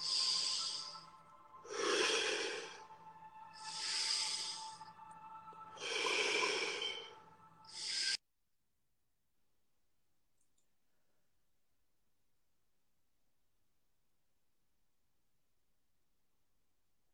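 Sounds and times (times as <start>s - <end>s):
slow meditation breathing in through the nose and out through the mouth: 0.0s - 8.2s.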